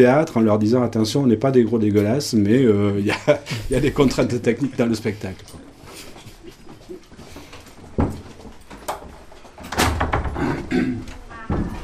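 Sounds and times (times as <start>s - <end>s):
speech: 0.0s - 5.6s
room noise: 0.0s - 11.8s
laughter: 3.0s - 4.4s
heavy fire door in a theatre slamming shut: 9.7s - 10.7s.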